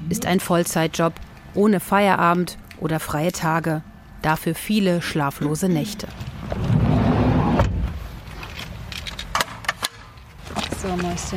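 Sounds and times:
speech: 0.1 - 6.7, 10.9 - 11.3
low rumble of a heavy pushchair hauled out of a car: 5.9 - 8.4.

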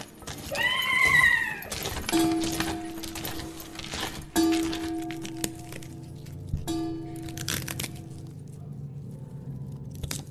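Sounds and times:
foley crackling fire: 0.0 - 10.2
foley horse whinnying: 0.4 - 1.9
deep church tower clock bell tolling: 2.1 - 8.5.

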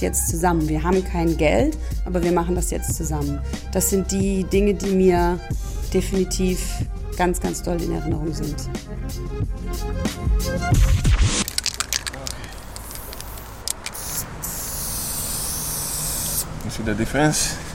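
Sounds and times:
speech: 0.0 - 11.4, 16.8 - 17.6
spray paint hissing from a can: 10.8 - 16.5
faint outdoor noise: 10.8 - 17.7
brief rattling: 11.4 - 14.1.

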